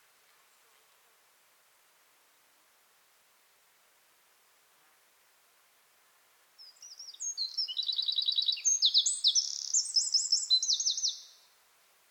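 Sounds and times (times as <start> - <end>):
Eurasian wren Troglodytes troglodytes song: 6.6 - 11.6.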